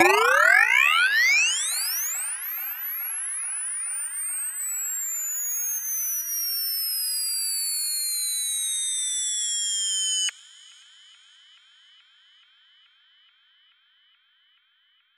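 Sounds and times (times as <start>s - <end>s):
indie pop riser with pop drum kit: 0.0s - 1.8s.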